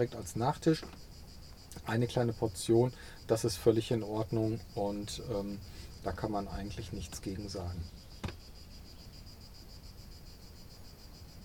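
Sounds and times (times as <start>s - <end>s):
speech: 0.0s - 1.1s, 1.8s - 8.1s
cicadas chirping outdoors: 0.0s - 11.4s
brief knock: 8.2s - 8.4s.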